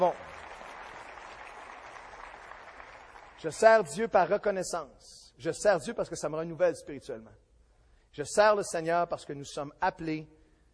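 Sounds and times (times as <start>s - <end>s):
speech: 0.0s - 0.3s, 3.4s - 7.4s, 8.1s - 10.4s
church congregation of young and old applauding: 0.0s - 3.6s.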